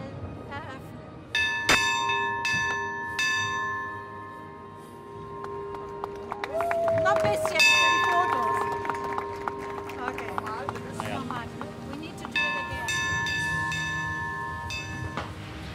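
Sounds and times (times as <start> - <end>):
bell ringing at harbour festival opening: 1.4 - 6.4, 7.5 - 11.2, 12.1 - 15.5
busy outdoor crowd with people talking: 5.9 - 14.0.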